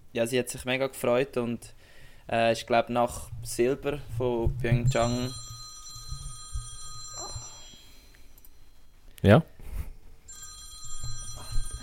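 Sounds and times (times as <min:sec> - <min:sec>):
speech: 0:00.2 - 0:05.5, 0:09.2 - 0:09.5
telephone ringing: 0:04.8 - 0:09.0, 0:10.3 - 0:11.8.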